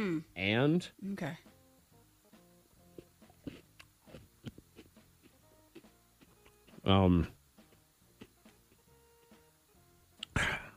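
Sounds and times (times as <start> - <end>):
speech: 0.0 - 1.5, 6.9 - 7.4
crunchy chewing of cereal: 2.8 - 6.9
loud harsh coughing fit of someone choking on cereal: 10.3 - 10.7.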